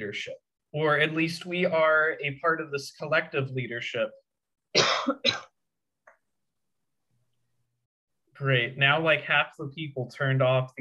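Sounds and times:
speech: 0.0s - 5.5s, 8.4s - 10.7s
person coughing: 4.8s - 5.6s.

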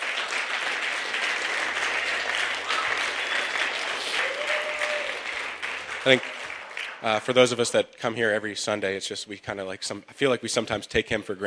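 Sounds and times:
room full of people applauding: 0.0s - 7.2s
speech: 6.0s - 6.4s, 7.0s - 11.4s.

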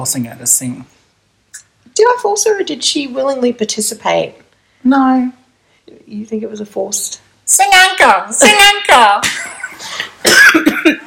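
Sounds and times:
speech: 0.0s - 11.0s
harsh heavy coughing fit: 9.3s - 11.0s.

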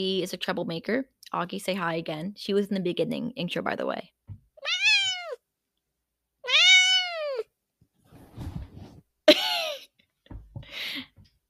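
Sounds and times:
speech: 0.0s - 4.2s
cat meowing: 4.6s - 5.4s, 6.4s - 7.5s.

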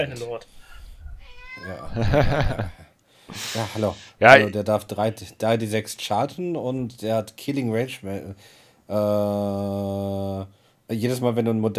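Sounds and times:
speech: 0.0s - 0.7s, 1.6s - 11.7s
cat meowing indoors: 1.1s - 2.0s
laughter: 1.8s - 3.9s.

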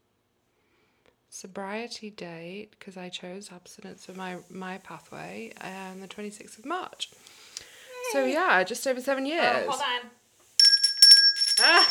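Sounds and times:
speech: 1.3s - 7.4s, 8.1s - 10.2s, 11.6s - 11.8s
small bell rung to celebrate a milestone: 10.6s - 11.8s.

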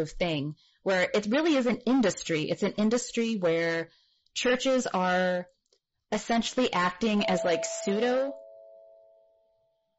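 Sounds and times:
speech: 0.0s - 8.4s
house doorbell ringing with an electronic chime tone: 7.2s - 9.5s.

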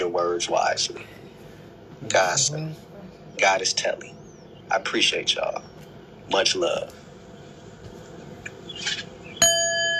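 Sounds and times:
soft noise: 0.0s - 9.9s
speech: 0.4s - 1.2s, 2.0s - 5.7s, 6.3s - 7.0s
bright metallic bell strike ringing: 9.4s - 9.9s.

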